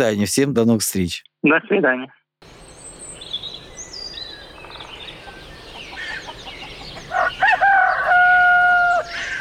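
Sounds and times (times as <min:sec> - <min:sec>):
speech: 0:00.0 - 0:02.6
rooster crowing: 0:05.9 - 0:09.4.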